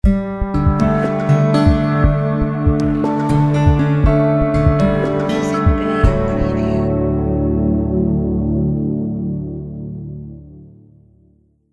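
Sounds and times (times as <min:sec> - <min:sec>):
soft guitar: 0:00.0 - 0:10.8.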